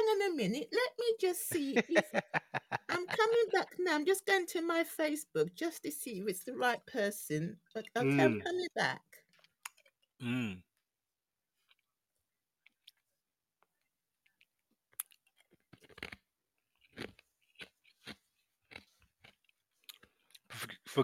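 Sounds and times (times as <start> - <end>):
speech: 0.3 - 9.2, 10.2 - 10.7, 20.6 - 21.0
laughter: 1.4 - 3.9, 8.0 - 8.5
ice being chewed: 12.6 - 20.7.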